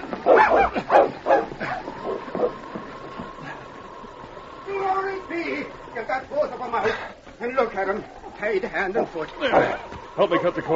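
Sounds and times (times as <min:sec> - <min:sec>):
dog barking in loud yelps: 0:00.2 - 0:02.6
speech: 0:06.2 - 0:10.7.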